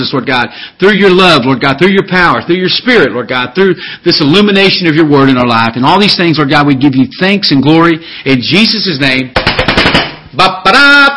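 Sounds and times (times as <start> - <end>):
speech: 0.0 - 9.4, 10.4 - 10.9
firecrackers going off: 9.4 - 10.3.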